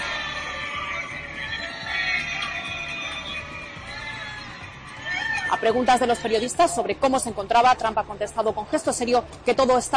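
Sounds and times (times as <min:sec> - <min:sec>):
crowd booing: 0:00.0 - 0:06.5
speech: 0:05.6 - 0:09.9.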